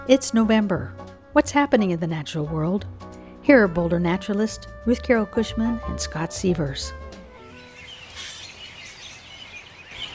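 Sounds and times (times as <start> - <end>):
speech: 0.0 - 7.0
flock of robins calling: 7.6 - 10.1.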